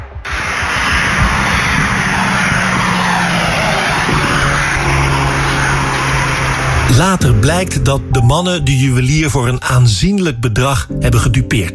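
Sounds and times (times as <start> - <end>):
tire and wind noise from a speeding Volkswagen Golf: 0.0 - 8.2
Volkswagen Golf engine roaring while speeding away on a ring road: 0.4 - 9.4
speech: 6.9 - 11.7.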